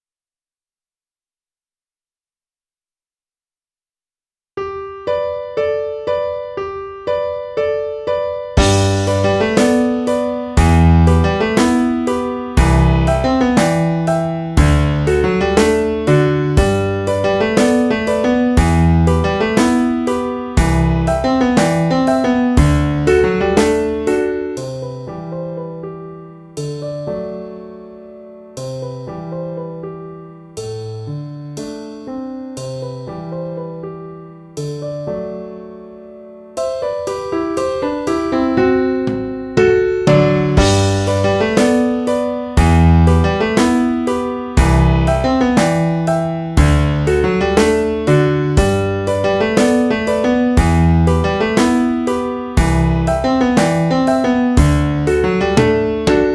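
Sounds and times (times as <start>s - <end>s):
pop piano: 4.6s - 56.3s
drum kit: 8.6s - 25.2s, 26.6s - 27.2s, 30.6s - 33.2s, 36.6s - 56.3s.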